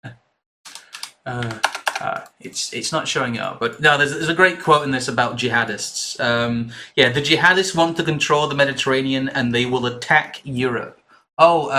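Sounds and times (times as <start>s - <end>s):
rapid clicking on a computer keyboard: 0.7s - 2.3s
speech: 1.2s - 11.7s.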